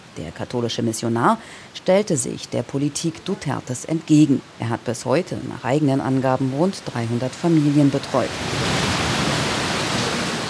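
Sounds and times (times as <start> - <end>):
speech: 0.2 - 8.7
heavy rain downpour: 7.3 - 10.4.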